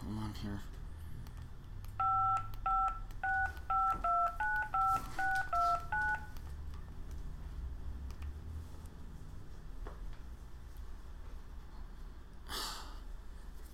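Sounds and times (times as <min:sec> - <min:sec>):
speech: 0:00.4 - 0:00.8
touch-tone beeps of a telephone number being dialed: 0:02.0 - 0:06.4.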